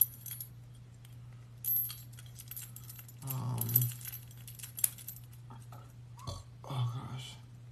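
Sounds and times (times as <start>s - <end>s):
steady low electrical hum: 0.0s - 7.6s
keys jangling while removed from keychain: 1.7s - 5.4s.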